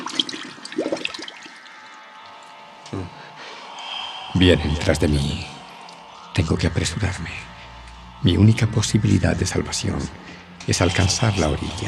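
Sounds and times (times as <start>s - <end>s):
bubbly gurgles underwater: 0.0s - 1.7s
churning water as a diver swims underwater: 0.0s - 1.8s
speech: 4.4s - 5.5s, 6.4s - 7.5s, 8.2s - 11.8s.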